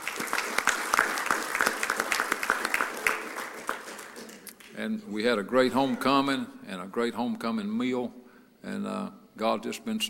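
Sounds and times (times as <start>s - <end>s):
roomful of people clapping: 0.0s - 4.7s
speech: 4.8s - 10.0s.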